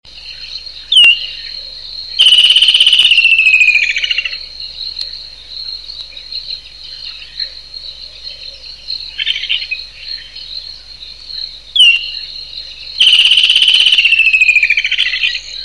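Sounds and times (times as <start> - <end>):
woodland kingfisher calling: 2.2 - 4.4, 13.0 - 15.6.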